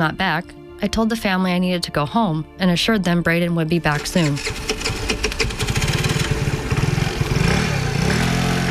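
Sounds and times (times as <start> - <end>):
speech: 0.0 - 5.3
motorcycle engine sputtering and revving: 3.9 - 8.6.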